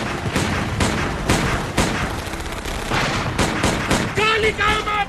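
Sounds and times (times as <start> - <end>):
gunfire volley: 0.0 - 4.5
speech: 4.4 - 4.9.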